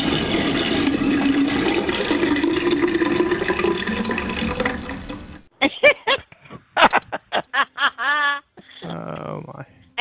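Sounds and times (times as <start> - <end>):
toilet flushing: 0.0 - 5.5
laughter: 5.6 - 8.5.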